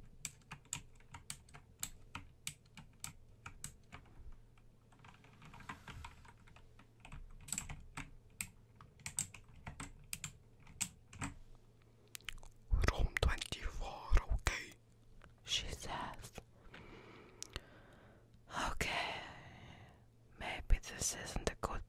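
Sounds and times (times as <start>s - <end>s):
hotel receptionist typing on a computer keyboard: 0.0s - 11.4s
low hum: 0.0s - 21.8s.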